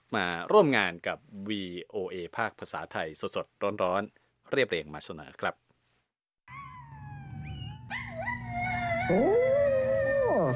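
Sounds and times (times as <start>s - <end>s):
speech: 0.1s - 5.6s, 9.1s - 9.4s
small dog howling: 6.5s - 10.5s.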